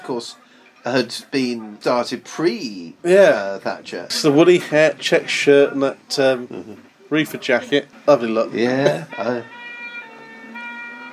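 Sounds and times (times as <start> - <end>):
speech: 0.1 - 9.6
laughter: 6.3 - 6.8, 8.6 - 9.5
Sherpa van ambulance siren wailing: 8.8 - 11.1.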